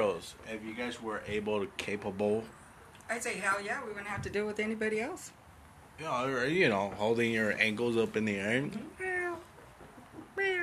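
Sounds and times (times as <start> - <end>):
speech: 0.2 - 5.4, 6.0 - 9.1
cat meowing: 8.8 - 9.5, 10.2 - 10.6.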